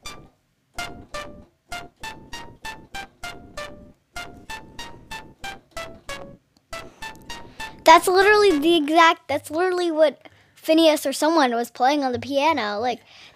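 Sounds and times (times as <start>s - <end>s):
synthesizer patch emulating the Commodore 64 SID chip with crunchy lo-fi digital noise: 0.0s - 8.8s
speech: 7.9s - 13.3s.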